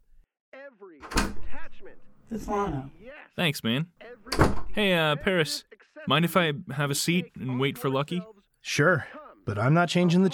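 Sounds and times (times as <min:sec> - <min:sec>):
door rattling as it is pulled open: 0:01.0 - 0:02.9, 0:04.3 - 0:04.9
door creaking as it is pulled open: 0:01.0 - 0:03.1, 0:04.2 - 0:05.0
speech: 0:02.3 - 0:10.3.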